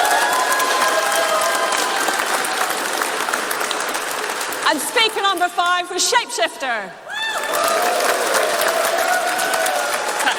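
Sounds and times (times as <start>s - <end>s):
crowd cheering with whoops and shouts: 0.0s - 3.6s, 7.0s - 10.3s
crowd clapping: 0.0s - 5.8s, 7.1s - 10.3s
speech: 4.7s - 7.1s.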